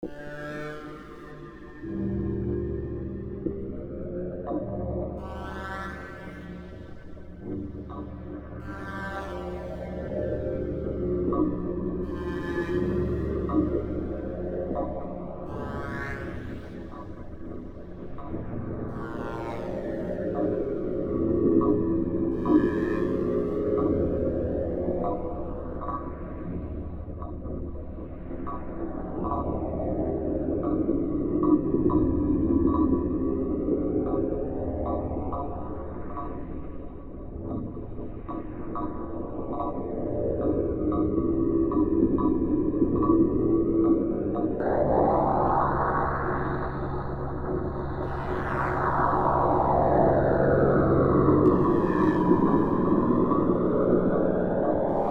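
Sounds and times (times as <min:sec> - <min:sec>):
dark ambient music: 0:00.0 - 0:55.0.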